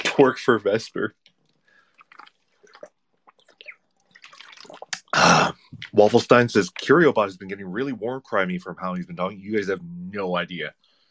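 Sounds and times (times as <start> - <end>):
speech: 0.2 - 1.3, 5.8 - 10.9
water sloshing and dripping: 1.2 - 5.1
person drinking water: 1.4 - 6.0
splashy gulp of water: 1.8 - 6.0.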